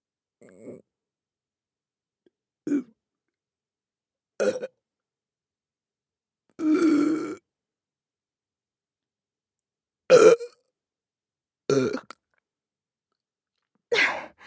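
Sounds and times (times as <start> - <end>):
person burping: 2.7 - 2.9, 4.4 - 4.7, 6.6 - 7.4, 10.1 - 10.6, 11.7 - 12.2.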